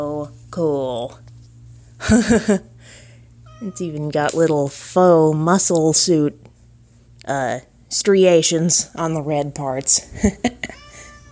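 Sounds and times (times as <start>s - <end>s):
speech: 0.0s - 1.3s, 2.0s - 3.0s, 3.6s - 6.5s, 7.2s - 10.8s
cat meowing: 3.5s - 3.8s, 10.7s - 11.3s.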